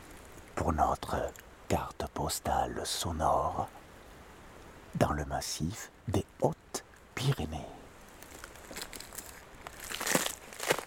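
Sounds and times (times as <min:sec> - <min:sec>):
speech: 0:00.7 - 0:03.8, 0:05.0 - 0:06.6, 0:07.2 - 0:07.8
crunching and crackling on an icy road in the Hautes-Pyrénées mountains: 0:08.1 - 0:10.8.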